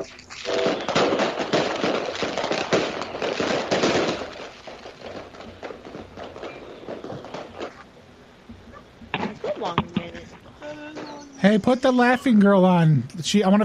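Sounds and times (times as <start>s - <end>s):
string of firecrackers crackling and popping: 0.0s - 12.5s
speech: 11.5s - 13.6s.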